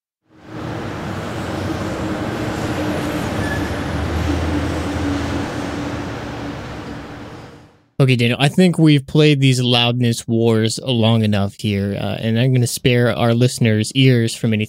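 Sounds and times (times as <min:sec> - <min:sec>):
road traffic streaming past: 0:00.3 - 0:07.9
speech: 0:08.0 - 0:14.6.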